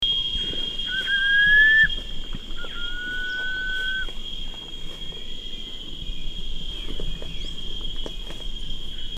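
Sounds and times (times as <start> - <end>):
striolated puffbird calling: 0.0 - 9.1.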